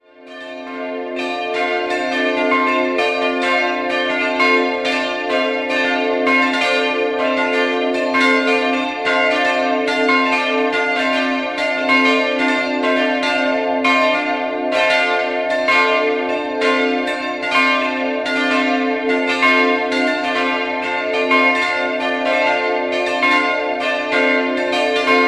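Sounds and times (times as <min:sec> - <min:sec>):
church bells ringing: 0:00.0 - 0:25.2.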